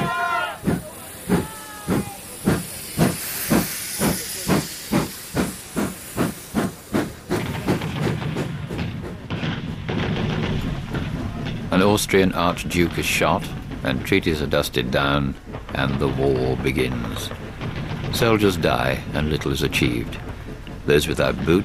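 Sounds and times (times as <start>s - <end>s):
steam locomotive chuffing as it accelerates: 0.0s - 21.6s
speech: 11.8s - 17.4s, 18.2s - 21.6s.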